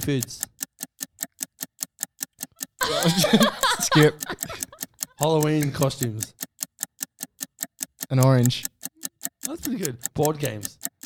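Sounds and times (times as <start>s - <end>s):
speech: 0.0s - 0.5s, 3.0s - 6.4s, 8.1s - 8.7s, 9.5s - 10.9s
game timer ticking during a word game: 0.0s - 11.0s
laughter: 2.8s - 4.8s.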